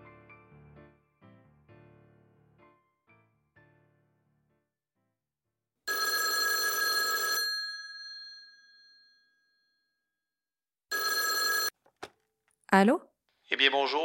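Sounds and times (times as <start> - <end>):
loud telephone bell ringing: 5.9 - 10.1, 10.9 - 11.8
speech: 12.7 - 14.0.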